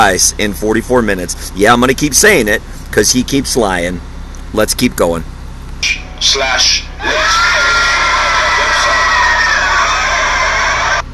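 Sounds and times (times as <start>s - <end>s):
speech: 0.0s - 7.5s
wild laughter: 7.0s - 11.0s
raucous crowd shrieking and whooping: 7.0s - 11.1s.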